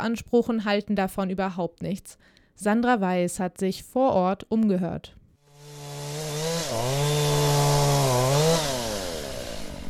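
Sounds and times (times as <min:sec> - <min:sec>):
speech: 0:00.0 - 0:05.2
chainsaw cutting wood during logging in the forests of El Tume in Chile: 0:05.4 - 0:09.8.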